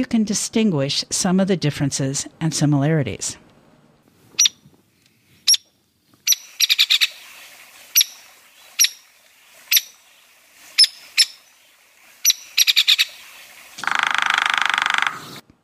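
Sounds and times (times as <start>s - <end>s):
speech: 0.0s - 3.4s
hairy woodpecker peek calls: 4.4s - 4.7s, 5.5s - 10.0s, 10.7s - 11.6s, 12.2s - 15.4s
hairy woodpecker harsh buzzy burst: 6.3s - 11.6s, 12.2s - 15.4s.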